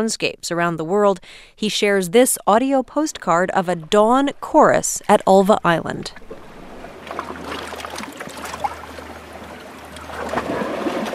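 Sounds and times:
speech: 0.0 - 6.4
boat engine drone crossing Paterson Inlet to Ulva Island: 2.2 - 11.1
water hissing and slapping along the boat hull: 3.2 - 11.1.

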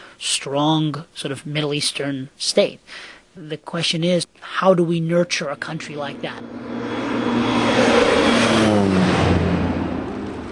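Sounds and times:
speech: 0.2 - 7.4
low-flying propeller airplane seeding flooded fields: 5.6 - 10.5.

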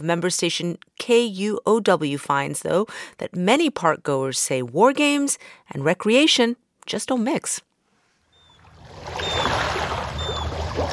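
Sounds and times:
speech: 0.0 - 7.7
faint high bird chirps: 8.3 - 10.6
gentle waves lapping against a shoreline: 8.5 - 10.9.

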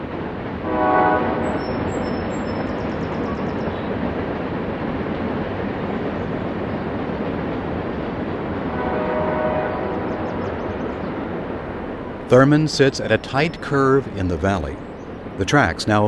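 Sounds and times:
train rumbling past through town: 0.0 - 16.0
train horn blasts: 0.6 - 1.9, 8.7 - 10.4
speech: 12.3 - 16.0.

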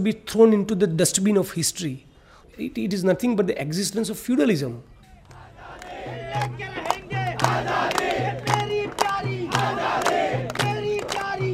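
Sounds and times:
speech: 0.0 - 4.9, 6.3 - 6.8
small marching crowd chanting a slogan in unison: 5.2 - 11.5
sharp percussive beats: 6.1 - 11.5.

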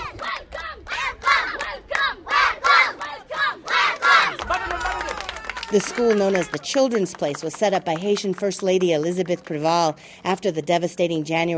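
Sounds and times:
children singing: 0.0 - 4.4
children cheering hip hip hooray: 0.0 - 6.9
speech: 5.7 - 11.5.

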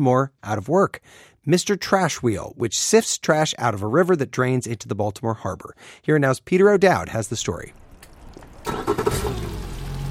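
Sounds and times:
speech: 0.0 - 7.8
small boat engine running on a river crossing: 7.3 - 10.1.

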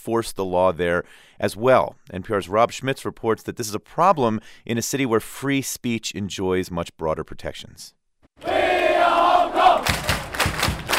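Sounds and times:
speech: 0.0 - 8.5
huge soccer stadium crowd chanting a cheer in unison: 8.4 - 10.3
stadium crowd rhythmic claps or stomps: 8.4 - 10.9.

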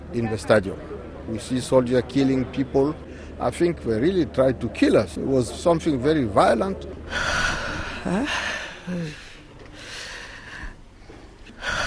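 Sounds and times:
speech: 0.1 - 9.2
traumatized older woman breathing laboredly with shaky gasps: 7.1 - 11.8.

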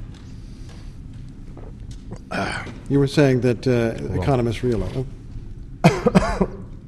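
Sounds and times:
speech: 2.4 - 5.2
person coughing to clear a frog in the throat: 5.8 - 6.7.

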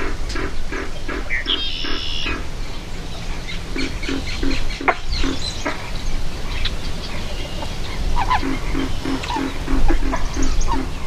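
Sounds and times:
faint higher calls: 0.0 - 11.0
male pig frogs croaking for mates in a marsh: 0.0 - 11.0.

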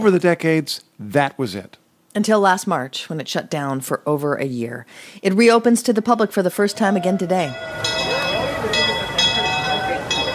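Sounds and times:
speech: 0.0 - 8.1
theme park railway train rumbling into a station: 6.7 - 10.3.

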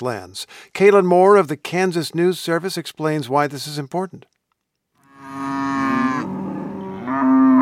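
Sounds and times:
speech: 0.0 - 4.3
cow mooing in a pasture: 5.0 - 7.6.

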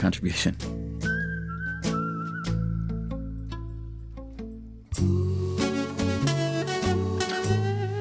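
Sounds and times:
speech: 0.0 - 0.8, 5.0 - 5.2
instrumental backing with steady bass and chords: 0.5 - 7.9
multitrack human whistling carrying a bright melody: 1.0 - 3.2.

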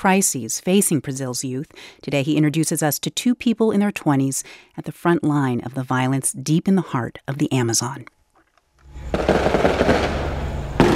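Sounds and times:
speech: 0.0 - 8.2
fireworks over a city in the Brazilian Amazon celebrating a court victory: 8.9 - 10.9.

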